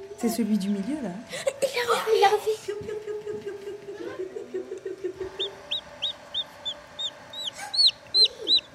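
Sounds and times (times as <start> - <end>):
speech: 0.2 - 3.4
laughter: 1.3 - 5.6
chicken chicks cheeping in short high peeps: 5.1 - 8.7
lower hen-like clucking: 5.2 - 8.7.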